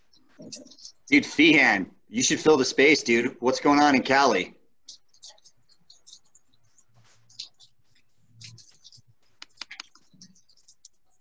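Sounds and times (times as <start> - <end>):
speech: 0.4 - 4.6
paper towel wiping a computer keyboard: 4.9 - 11.2.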